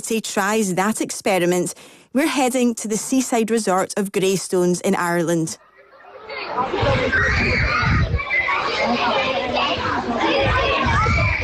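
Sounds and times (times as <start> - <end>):
speech: 0.1 - 5.7, 6.3 - 8.1, 8.8 - 9.4
children laughing, shouting and playing in a primary school playground: 5.6 - 11.4.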